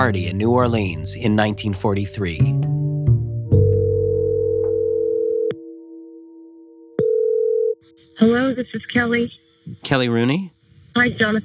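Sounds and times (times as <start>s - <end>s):
speech: 0.0s - 2.7s, 8.2s - 11.4s
telephone dial tone while placing a phone call: 3.7s - 5.7s, 7.0s - 8.0s.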